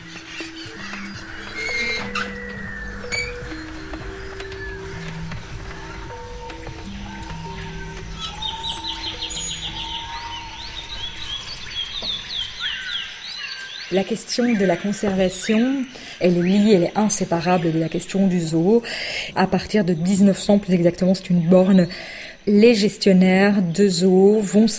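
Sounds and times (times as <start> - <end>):
steady low hum: 0.0 - 12.9
birds chirping and tweeting at feeding time: 0.0 - 24.7
speech: 13.9 - 24.7.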